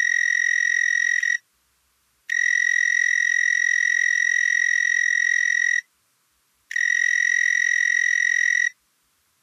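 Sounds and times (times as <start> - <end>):
narrow-winged tree cricket singing a high pulsing trill in North America: 0.0 - 1.4, 2.3 - 5.9, 6.7 - 8.8.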